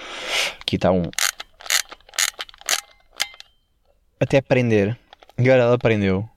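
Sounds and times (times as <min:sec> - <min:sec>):
small dial wheel turned with crisp ratcheting clicks: 0:00.6 - 0:03.5
speech: 0:00.7 - 0:01.2, 0:04.2 - 0:06.3.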